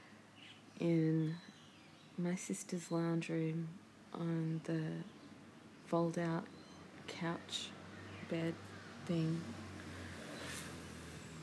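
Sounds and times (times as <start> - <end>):
speech: 0.8 - 1.5, 2.2 - 5.1, 5.9 - 9.6
road traffic humming: 4.5 - 11.4
vehicle passing outside: 7.7 - 11.4.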